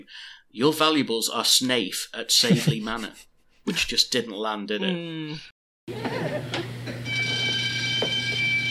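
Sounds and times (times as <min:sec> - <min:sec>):
speech: 0:00.0 - 0:06.9
burglar alarm ringing: 0:07.0 - 0:08.6.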